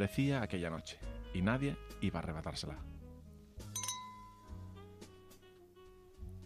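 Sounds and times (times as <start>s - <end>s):
speech: 0.0s - 3.0s
steady low music: 0.0s - 6.4s
glasses clinking together in a toast: 3.8s - 4.6s.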